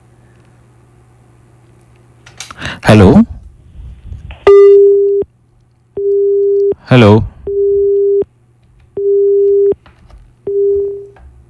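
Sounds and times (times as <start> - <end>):
speech: 2.8 - 3.3, 6.9 - 7.3
telephone busy tone after a caller's line drops: 6.0 - 6.8, 7.5 - 8.2, 9.0 - 9.8, 10.5 - 11.2.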